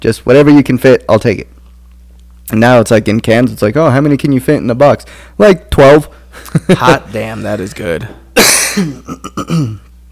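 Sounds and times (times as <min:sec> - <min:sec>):
speech: 0:00.0 - 0:01.6, 0:02.5 - 0:09.8
person coughing and clearing throat after a throat infection: 0:08.4 - 0:09.9.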